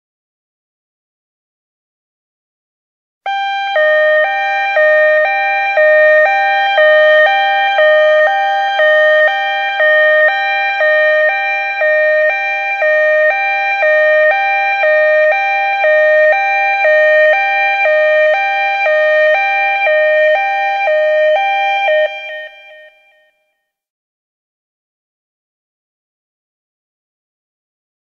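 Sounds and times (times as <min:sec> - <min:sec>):
European siren: 0:03.3 - 0:23.7.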